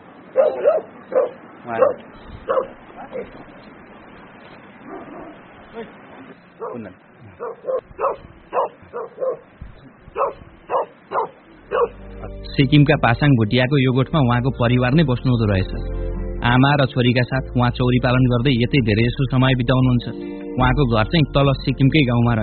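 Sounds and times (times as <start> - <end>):
dogs barking while chasing another dog at a herders' hut in Sikkim: 0.3 - 3.3, 4.8 - 5.5, 6.6 - 12.0
speech: 0.6 - 3.8, 5.0 - 10.8, 11.8 - 22.4.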